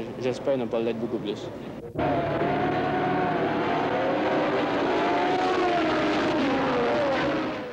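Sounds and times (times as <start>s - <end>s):
speech: 0.2s - 2.3s
Formula 1 race cars roaring at the start of the Grand Prix in Montréal: 1.6s - 7.7s.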